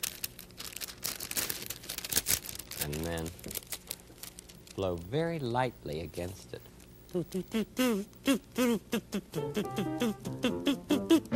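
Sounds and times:
wax paper crinkling as it is pressed over a comb: 0:00.0 - 0:06.9
speech: 0:02.9 - 0:03.7, 0:04.8 - 0:11.3.

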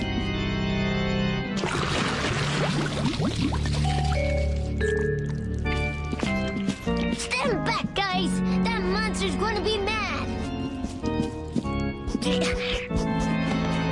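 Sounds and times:
music: 0:00.0 - 0:13.8
water pouring out and splashing: 0:01.5 - 0:07.2
speech: 0:02.7 - 0:05.4, 0:07.2 - 0:10.4.

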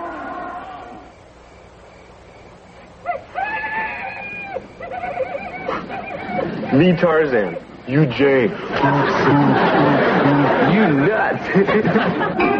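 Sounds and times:
recorded shrill wavering wild animal screams: 0:00.0 - 0:01.1, 0:03.0 - 0:07.8
steady hum: 0:00.0 - 0:12.5
laughter: 0:04.8 - 0:12.5
speech: 0:06.8 - 0:12.5.

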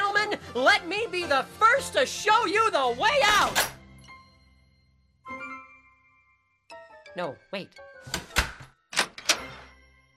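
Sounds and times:
speech: 0:00.6 - 0:03.7, 0:07.2 - 0:08.2
wooden door pulled shut and latching: 0:08.1 - 0:09.6.

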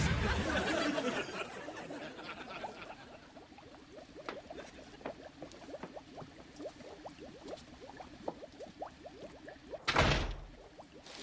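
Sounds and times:
laughter: 0:00.1 - 0:03.3
sharp loud door slam: 0:09.9 - 0:10.5.

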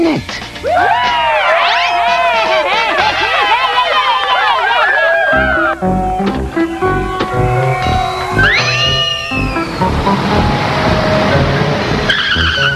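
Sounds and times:
speech: 0:00.0 - 0:01.1
laughter: 0:00.7 - 0:07.6
stretch limo tire squeals skidding in: 0:00.7 - 0:12.7
stretch limo engine rumbling: 0:05.4 - 0:12.7.

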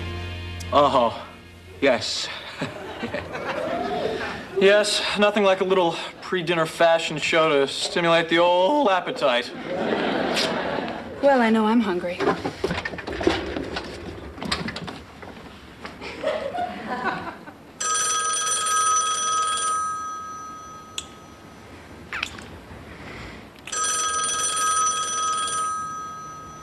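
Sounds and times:
speech: 0:00.7 - 0:01.2, 0:01.8 - 0:03.6, 0:04.6 - 0:10.6, 0:11.2 - 0:12.9
laughter: 0:02.3 - 0:04.6, 0:08.8 - 0:11.2, 0:16.0 - 0:17.7
telephone bell ringing: 0:17.8 - 0:21.7, 0:23.7 - 0:26.6.

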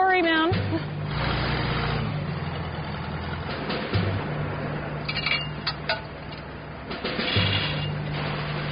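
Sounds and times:
heavy truck engine idling as the stuck truck is moved off a road in Buffalo: 0:00.0 - 0:08.7
faint metallic clinks: 0:05.1 - 0:06.4.

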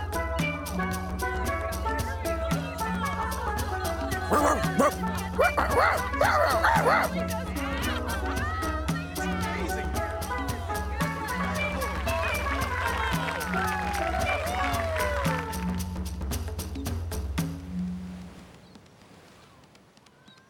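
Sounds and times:
steady musical background: 0:00.0 - 0:18.2
laughter: 0:01.8 - 0:15.6
small dog barking and yipping excitedly: 0:04.3 - 0:07.2
speech: 0:04.3 - 0:07.5.

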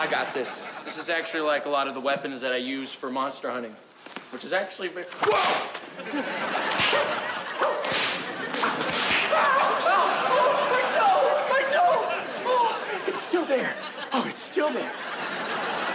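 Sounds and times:
people laughing: 0:00.0 - 0:01.6, 0:05.7 - 0:15.9
speech: 0:00.0 - 0:08.0, 0:13.5 - 0:15.5
beast-taming whip cracking: 0:05.1 - 0:05.8, 0:06.7 - 0:09.4
people chattering: 0:05.1 - 0:15.9.

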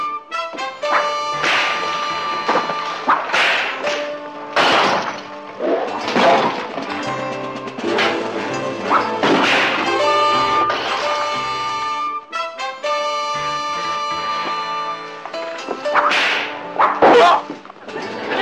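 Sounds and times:
loud brassy dramatic music: 0:00.0 - 0:18.3
whip cracking and lashing: 0:00.8 - 0:06.6, 0:08.8 - 0:11.2, 0:15.8 - 0:17.4.

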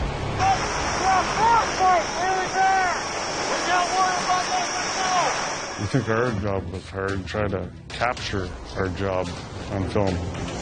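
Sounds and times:
strong polar wind in extreme cold shaking a ladder: 0:00.0 - 0:06.3
speech: 0:05.9 - 0:10.5.

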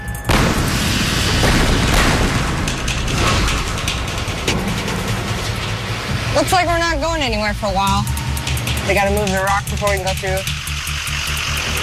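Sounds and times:
crackling debris from blast: 0:00.1 - 0:11.8
blasting explosion breaking rocky ice on a frozen swampland road: 0:00.3 - 0:06.4
speech: 0:06.4 - 0:08.2, 0:08.9 - 0:10.6.

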